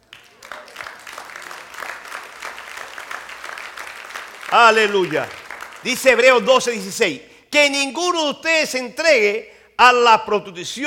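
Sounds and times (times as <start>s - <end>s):
crowd applauding in a large room: 0.0s - 6.7s
speech: 4.5s - 10.8s.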